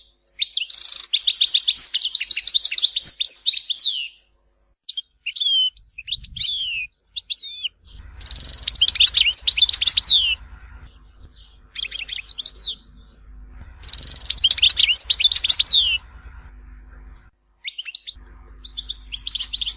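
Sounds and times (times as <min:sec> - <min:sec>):
European goldfinch song: 0:00.0 - 0:04.2, 0:04.9 - 0:19.7
faint low hum: 0:03.9 - 0:19.7.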